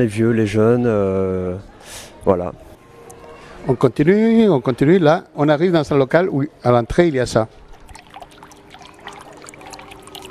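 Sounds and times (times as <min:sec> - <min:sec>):
speech: 0:00.0 - 0:02.7, 0:03.6 - 0:07.6
water trickling and splashing in a small indoor fountain with recirculating pump: 0:06.7 - 0:10.2.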